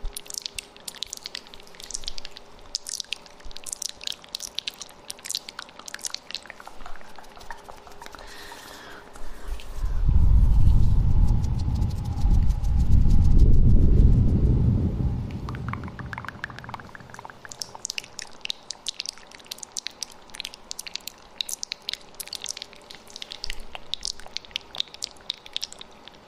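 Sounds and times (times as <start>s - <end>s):
wet ASMR mouth sounds with echo: 0.0s - 9.7s, 15.5s - 26.2s
deep rumbling blow or hum: 9.8s - 16.7s.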